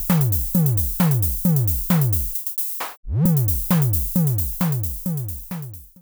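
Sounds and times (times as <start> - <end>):
reversed percussion: 0.2 - 5.9.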